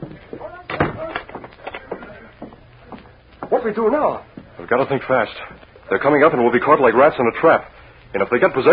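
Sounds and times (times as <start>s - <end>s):
faint voices: 0.0s - 8.7s
door thudding shut: 0.7s - 1.4s
speech: 3.6s - 8.7s.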